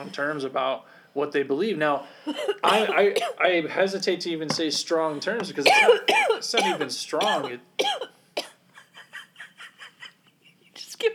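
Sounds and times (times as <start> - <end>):
speech: 0.0 - 8.1
person coughing in a conversation: 2.3 - 3.4, 5.2 - 8.6.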